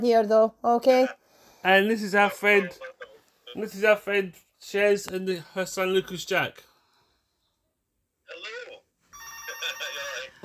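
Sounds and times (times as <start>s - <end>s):
speech: 0.0s - 2.9s, 3.5s - 6.7s
telephone ringing in electronic warbling bursts: 8.4s - 10.4s.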